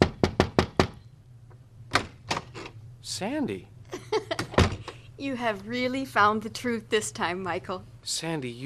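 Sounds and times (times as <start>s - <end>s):
knocking on a door: 0.0s - 1.0s, 4.4s - 4.8s
speech: 3.0s - 3.8s, 5.2s - 8.6s.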